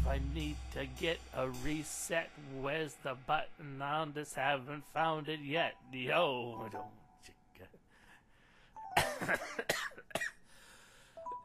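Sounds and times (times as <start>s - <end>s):
speech: 0.2s - 7.8s, 9.2s - 10.4s
person coughing from too much cannabis: 9.0s - 10.4s.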